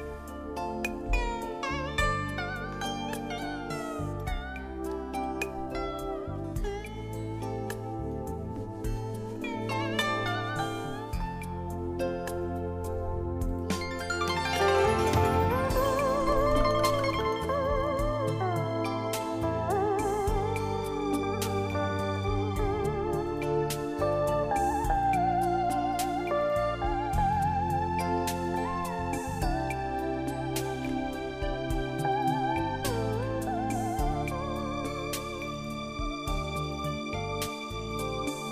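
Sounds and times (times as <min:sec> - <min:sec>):
instrumental accompaniment: 0:00.0 - 0:38.5.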